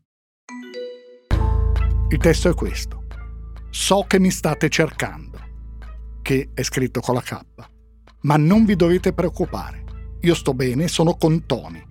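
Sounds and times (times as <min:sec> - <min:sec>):
two bright chiming notes of a mobile phone text message alert: 0:00.5 - 0:01.6
speech: 0:02.1 - 0:03.0, 0:03.7 - 0:05.4, 0:06.3 - 0:11.8.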